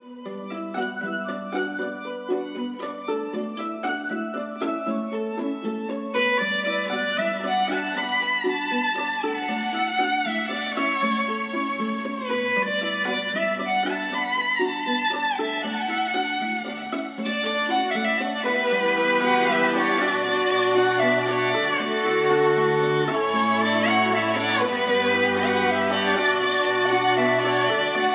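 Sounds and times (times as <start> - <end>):
Android violin ringtone: 0.0 - 28.1.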